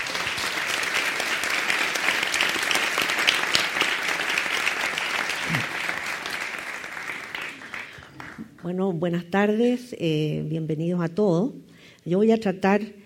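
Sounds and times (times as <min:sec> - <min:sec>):
room full of people applauding: 0:00.0 - 0:08.6
speech: 0:08.7 - 0:13.0.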